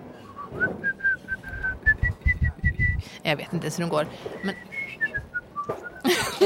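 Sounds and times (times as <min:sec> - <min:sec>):
person whistling a children's song tune: 0:00.2 - 0:03.0, 0:04.4 - 0:06.1
soft low thumps: 0:00.6 - 0:03.1
speech: 0:03.2 - 0:04.7
laughter: 0:06.0 - 0:06.4.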